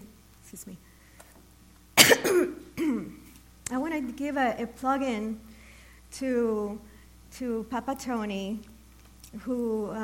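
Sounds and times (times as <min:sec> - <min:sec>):
speech: 0:00.5 - 0:00.9, 0:04.0 - 0:05.5, 0:06.1 - 0:08.7, 0:09.3 - 0:10.0
person with a tickle in the throat clearing throat: 0:02.0 - 0:03.2
person with a tickle in the throat coughing: 0:02.0 - 0:03.2.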